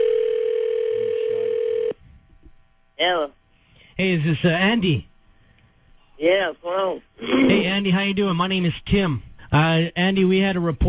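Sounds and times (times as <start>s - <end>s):
telephone dial tone while placing a call: 0.0s - 2.0s
faint low noise: 0.0s - 10.8s
speech: 4.0s - 5.1s, 6.2s - 10.8s.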